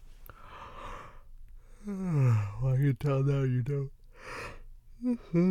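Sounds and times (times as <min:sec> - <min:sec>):
sleepy yawn with breathy intake and moaning tones: 0:01.8 - 0:02.6, 0:05.0 - 0:05.4
speech: 0:03.0 - 0:04.0, 0:05.0 - 0:05.4.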